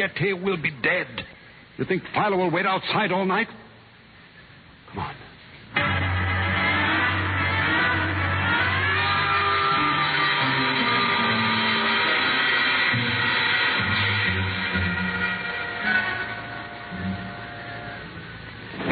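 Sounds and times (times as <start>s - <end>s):
speech: 0.0s - 3.6s, 4.9s - 5.2s
service elevator humming as it descends to a basement garage: 5.7s - 18.8s.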